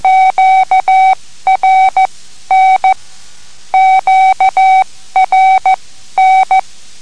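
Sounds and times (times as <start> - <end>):
radio telegraph Morse code beeps: 0.0 - 3.0, 3.8 - 6.6.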